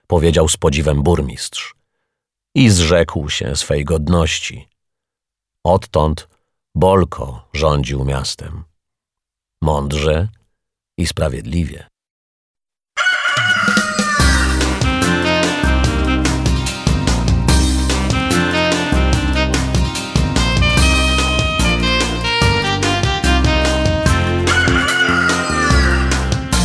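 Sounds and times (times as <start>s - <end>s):
speech: 0.1s - 1.8s, 2.6s - 4.7s, 5.6s - 8.7s, 9.6s - 10.4s, 11.0s - 11.9s
rooster crowing: 13.0s - 14.7s, 24.4s - 26.4s
loud rhythmic music with pulsing bass line: 14.2s - 26.6s.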